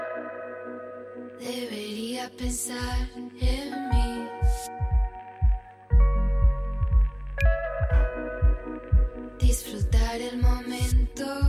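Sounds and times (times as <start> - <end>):
instrumental synth-pop music with bright sustained electronic chords: 1.1 - 11.4
speech: 2.3 - 4.1.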